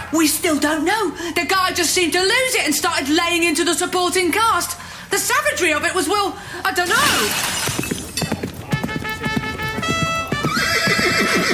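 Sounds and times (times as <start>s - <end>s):
speech: 0.1s - 7.8s
horse hooves clip-clopping: 6.8s - 11.5s
horse whinnying: 9.4s - 11.5s.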